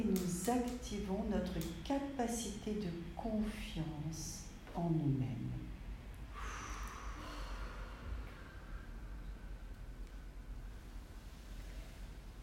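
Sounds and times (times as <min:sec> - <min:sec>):
speech: 0:00.0 - 0:05.8
deep inhalation through the nose: 0:06.3 - 0:09.2.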